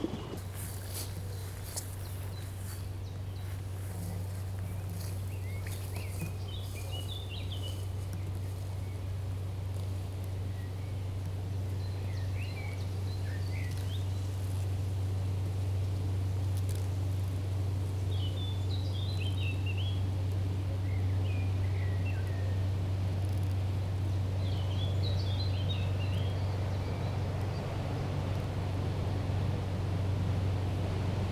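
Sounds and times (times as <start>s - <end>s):
motor ship in a canal: 0.0s - 31.3s.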